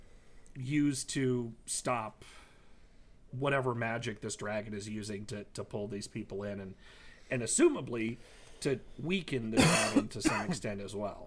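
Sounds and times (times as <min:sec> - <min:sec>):
speech: 0:00.6 - 0:02.4, 0:03.3 - 0:11.2
person coughing: 0:09.6 - 0:10.6.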